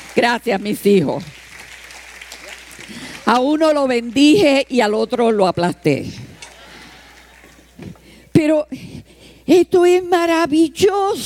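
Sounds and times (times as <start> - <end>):
crowd clapping: 0.0 - 4.5
speech: 0.2 - 1.4, 2.9 - 6.2, 8.4 - 8.9, 9.5 - 11.2.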